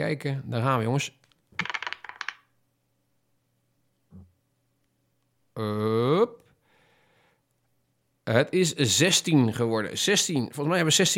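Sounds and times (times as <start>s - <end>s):
speech: 0.0s - 1.7s, 5.6s - 6.4s, 8.3s - 11.1s
dice tumbling across a hard surface: 1.6s - 2.5s.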